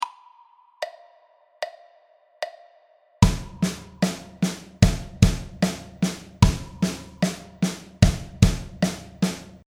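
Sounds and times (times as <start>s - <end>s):
four-way drum pattern at 75 bpm: 3.2s - 9.6s.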